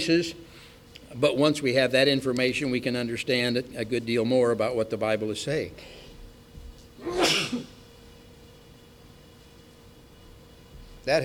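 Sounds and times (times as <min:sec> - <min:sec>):
speech: 0:00.0 - 0:00.4, 0:01.1 - 0:06.0, 0:11.1 - 0:11.2
person sneezing: 0:07.0 - 0:07.8.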